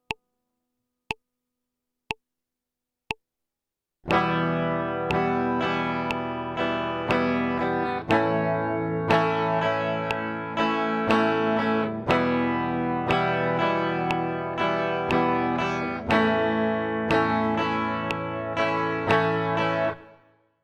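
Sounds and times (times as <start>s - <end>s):
guitar strumming: 4.1s - 20.3s.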